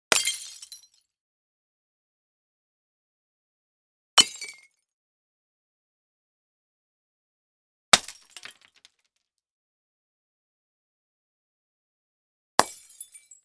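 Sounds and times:
bottle or jar smashed: 8.0 - 8.9.

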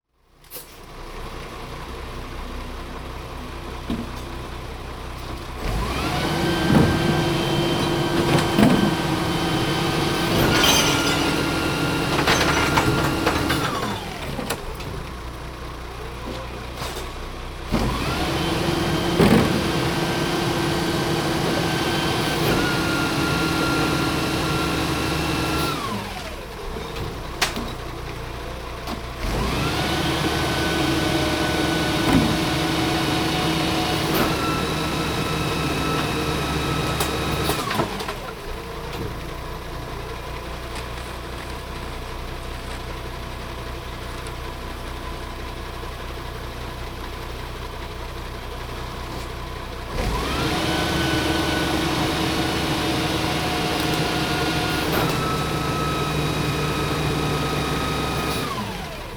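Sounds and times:
garbage truck collecting garbage: 0.4 - 59.1.

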